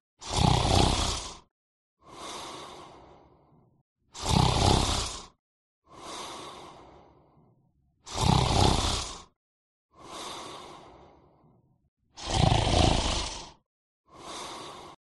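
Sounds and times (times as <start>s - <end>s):
man sleeping in a room of a house, snoring with deep heavy breathing: 0.2s - 3.1s, 4.2s - 6.9s, 8.0s - 9.4s, 12.2s - 15.0s.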